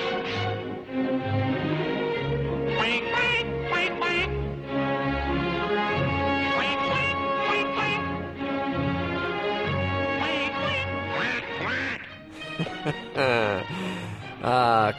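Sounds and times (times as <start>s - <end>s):
full orchestral waltz in an animated cartoon: 0.0s - 14.9s
loud nasal cartoon duck quacks: 2.8s - 4.3s, 6.6s - 8.1s, 10.2s - 12.1s
laughter: 12.4s - 14.9s.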